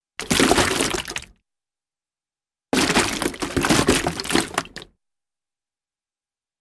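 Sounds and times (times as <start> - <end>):
cartoon splashy movement through thick goopy liquid: 0.2 - 1.3, 2.8 - 4.9.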